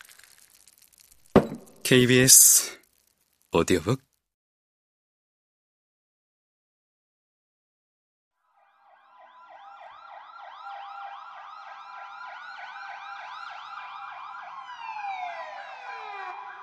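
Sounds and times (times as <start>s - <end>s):
speech: 1.9s - 2.8s, 3.5s - 4.1s
many emergency sirens wailing together: 8.6s - 16.6s.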